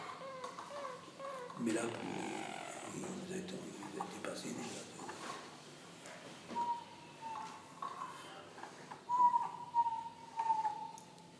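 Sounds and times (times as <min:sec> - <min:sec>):
Harz canaries singing together in rolling low-pitched trills and whistled tones: 0:00.1 - 0:02.0, 0:06.6 - 0:08.2, 0:09.0 - 0:11.1
speech: 0:01.6 - 0:02.2, 0:03.3 - 0:05.0.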